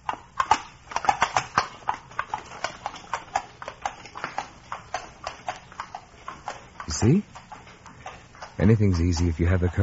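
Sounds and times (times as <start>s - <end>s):
horse hooves clip-clopping pulling a carriage along a hard road: 0.0s - 9.8s
speech: 6.9s - 7.4s, 8.6s - 9.8s.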